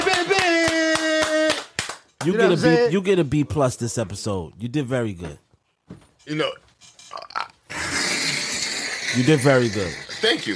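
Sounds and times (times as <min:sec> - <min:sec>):
hands clapping for the team: 0:00.0 - 0:02.7
speech: 0:02.2 - 0:05.4, 0:06.2 - 0:07.3, 0:09.1 - 0:10.5.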